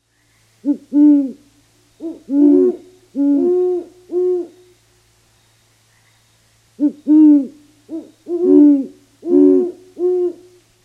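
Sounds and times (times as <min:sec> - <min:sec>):
great horned owl pair duetting: 0:02.0 - 0:04.7, 0:06.8 - 0:10.5.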